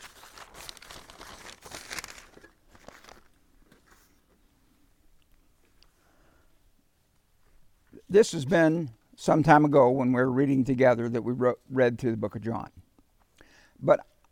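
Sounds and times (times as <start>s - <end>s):
paper rustling as sheets are shuffled: 0.0s - 4.2s
speech: 8.1s - 12.8s, 13.8s - 14.1s.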